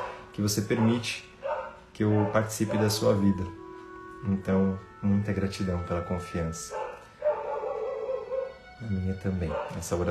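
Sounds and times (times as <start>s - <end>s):
dog bark stretched almost into a howl: 0.0s - 3.3s, 6.7s - 8.6s, 9.4s - 10.1s
speech: 0.4s - 1.3s, 2.0s - 3.6s, 4.2s - 6.8s, 8.8s - 10.1s.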